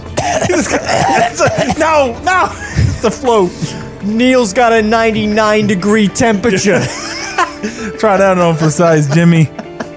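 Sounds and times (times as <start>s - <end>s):
person coughing: 0.2s - 3.0s
speech: 0.4s - 9.6s
laughter: 0.5s - 3.8s, 6.4s - 9.9s.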